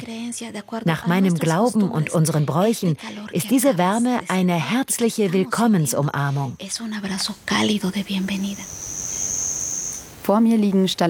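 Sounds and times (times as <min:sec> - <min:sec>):
speech: 0:00.1 - 0:08.9, 0:10.3 - 0:11.0
crickets chirping in a humid cave: 0:06.6 - 0:10.3
hushed speech: 0:07.0 - 0:08.8.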